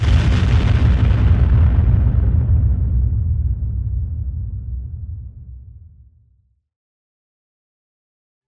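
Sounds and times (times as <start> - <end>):
massive sci-fi spaceship explosion after torpedo hit: 0.0 - 6.0.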